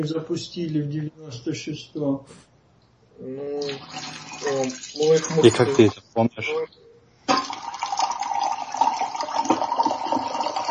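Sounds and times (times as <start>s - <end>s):
speech: 0.0s - 2.5s, 3.2s - 7.6s
water pouring into a container: 3.6s - 5.9s, 7.3s - 10.6s.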